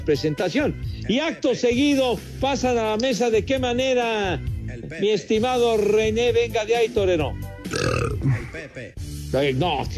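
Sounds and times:
speech: 0:00.0 - 0:09.9
loud drawn-out belch with a low grunting tone: 0:07.7 - 0:08.6.

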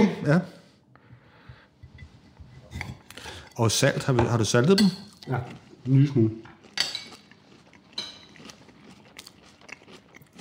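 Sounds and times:
speech: 0:00.0 - 0:00.6, 0:03.6 - 0:06.5
crunchy food being bitten and chewed: 0:05.1 - 0:10.3.

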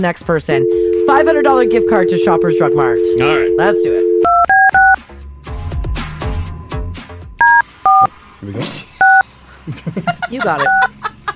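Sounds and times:
speech: 0:00.0 - 0:04.1, 0:08.4 - 0:08.8, 0:10.3 - 0:11.0
loud touch-tone keypad beeps: 0:00.6 - 0:05.0, 0:07.4 - 0:08.1
laughter: 0:09.5 - 0:11.3.

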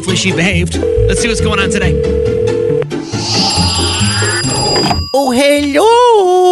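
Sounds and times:
speech: 0:00.0 - 0:02.2, 0:04.8 - 0:06.4
telephone ringing with electronic trill: 0:00.8 - 0:05.9.

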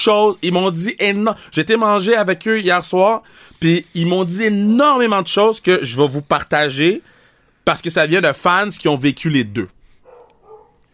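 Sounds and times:
speech: 0:00.0 - 0:09.8
dog barks: 0:10.0 - 0:10.8.

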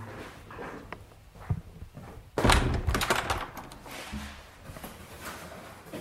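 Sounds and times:
door slamming shut: 0:02.4 - 0:03.8.

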